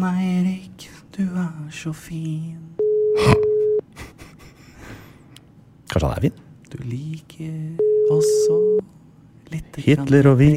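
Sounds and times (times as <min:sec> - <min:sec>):
speech: 0:00.0 - 0:04.1, 0:06.0 - 0:10.5
telephone ringing tone on an outgoing call: 0:02.8 - 0:03.8, 0:07.8 - 0:08.8.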